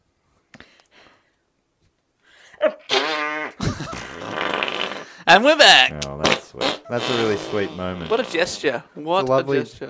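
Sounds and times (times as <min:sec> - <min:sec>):
comedic fart sound effect with rippling buzzy tone: 0:02.9 - 0:05.2, 0:06.0 - 0:08.6
speech: 0:05.3 - 0:06.0, 0:06.9 - 0:09.8.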